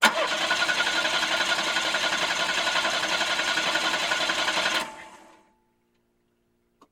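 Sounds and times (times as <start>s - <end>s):
car starter cranking: 0.0s - 5.0s.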